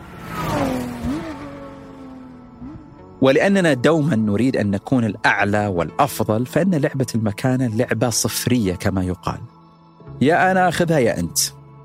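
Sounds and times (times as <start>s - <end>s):
long-bodied Ford car engine revving: 0.0s - 4.2s
speech: 3.2s - 9.6s, 10.2s - 11.6s.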